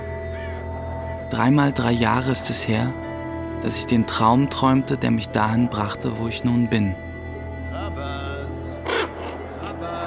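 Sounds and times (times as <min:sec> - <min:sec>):
ravens cawing on a perch: 0:00.0 - 0:01.4, 0:08.7 - 0:10.0
steady low drone: 0:00.0 - 0:10.0
speech: 0:01.3 - 0:07.0.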